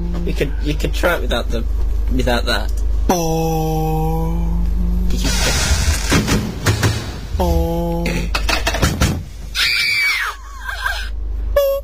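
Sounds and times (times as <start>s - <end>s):
speech: 0.2s - 4.5s
noisy burst: 5.0s - 9.6s
loud high-pitched scream breaking into wavering cries: 9.5s - 11.1s.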